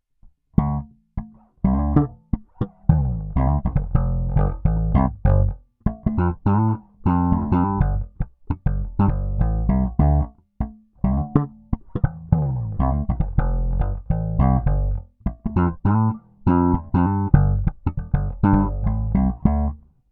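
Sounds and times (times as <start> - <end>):
slap tone through Peavey stock bridge pickup: 0.6 - 19.9.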